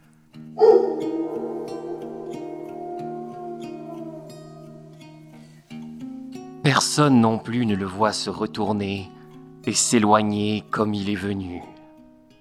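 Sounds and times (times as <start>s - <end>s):
low pulsing musical drone: 0.6s - 5.1s
wolf howling at the full moon: 0.6s - 5.5s
speech: 6.7s - 11.8s.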